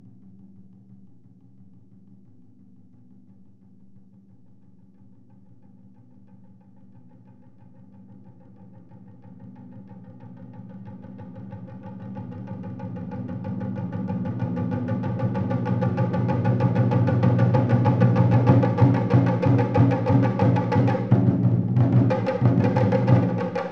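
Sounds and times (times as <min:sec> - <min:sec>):
taiko drum crescendo: 0:11.4 - 0:23.7.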